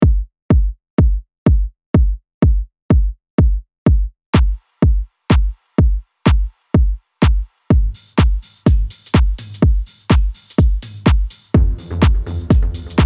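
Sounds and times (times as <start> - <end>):
deep house drums: 0.0 - 13.0.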